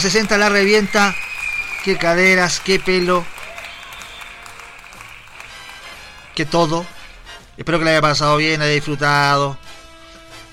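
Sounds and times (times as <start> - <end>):
speech: 0.0 - 1.2, 1.8 - 3.3, 6.4 - 7.0, 7.6 - 9.6
group clapping for a birthday: 0.0 - 7.2.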